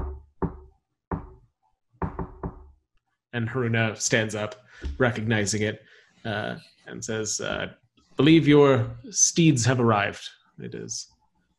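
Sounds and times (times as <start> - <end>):
knocking on a wooden door: 0.0 - 1.4, 2.0 - 2.7
speech: 3.3 - 11.1.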